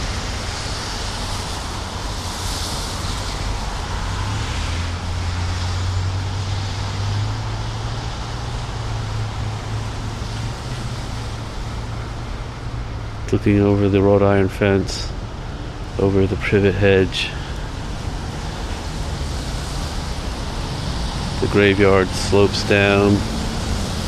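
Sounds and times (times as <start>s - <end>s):
road traffic passing in both directions: 0.0s - 24.0s
speech: 13.3s - 15.2s, 16.0s - 17.4s, 21.5s - 23.3s.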